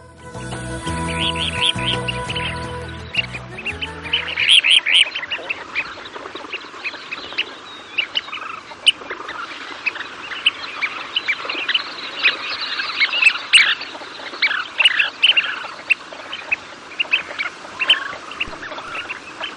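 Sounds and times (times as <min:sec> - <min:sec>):
brief musical passage: 0:00.0 - 0:04.8
Kentish plover calls: 0:00.8 - 0:19.5.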